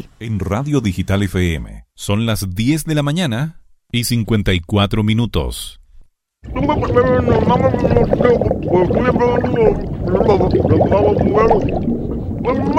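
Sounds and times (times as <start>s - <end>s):
speech: 0.2s - 5.8s, 6.4s - 12.7s
water bubbling and gurgling: 6.4s - 12.7s
person speaking muffled while submerged underwater: 6.5s - 12.7s.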